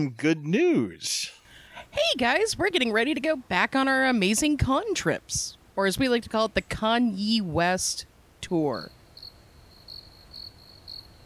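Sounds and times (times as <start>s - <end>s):
speech: 0.0s - 9.0s
cricket chirping: 8.9s - 11.2s.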